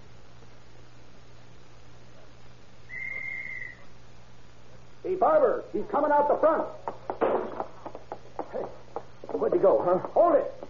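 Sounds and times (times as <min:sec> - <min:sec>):
steady hiss and low hum: 0:00.0 - 0:10.6
shrill whistle blast: 0:02.9 - 0:03.9
speech: 0:05.1 - 0:06.8, 0:09.4 - 0:10.6.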